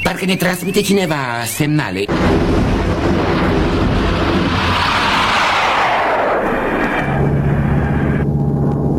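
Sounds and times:
speech: 0.1 - 2.6
airplane flying low overhead: 2.1 - 8.9.

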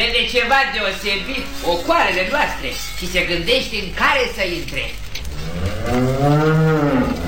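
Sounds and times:
speech: 0.0 - 7.2
cow being called toward farm pens mooing: 5.3 - 7.2.

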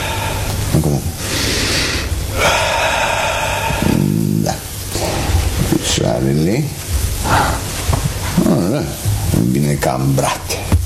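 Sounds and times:
deep breath taken during rifle-shooting instruction: 0.0 - 0.6, 1.2 - 5.6
speech: 0.8 - 1.6, 6.0 - 7.4, 8.7 - 10.7.

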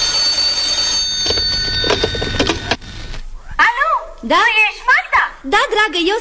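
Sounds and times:
telephone ringing on the line: 0.0 - 3.2
speech: 4.3 - 4.7, 5.4 - 6.2.

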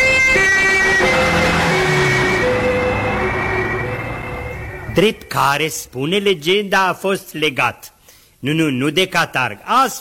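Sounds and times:
emergency vehicle siren wailing: 0.0 - 5.9
low traffic rumble: 1.0 - 6.0
speech: 5.0 - 10.0.

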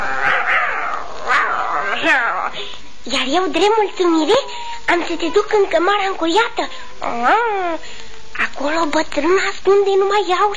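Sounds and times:
puppy growling: 0.0 - 2.8, 4.6 - 7.8
speech: 3.1 - 8.0, 8.6 - 10.5.

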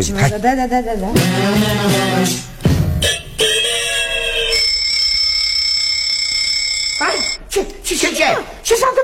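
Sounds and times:
speech: 0.0 - 2.8
electronic alarm ringing with a steady bright tone: 3.0 - 7.5.

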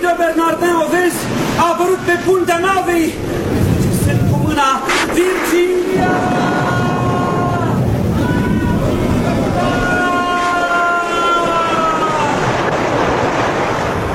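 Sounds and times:
stormy sea with high crashing waves: 0.0 - 14.1
drawn-out wailing tones: 4.9 - 12.5.

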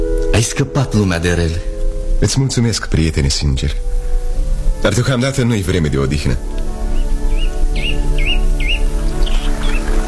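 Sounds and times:
speech: 0.4 - 4.0, 4.8 - 6.7
birds chirping: 3.8 - 10.0.

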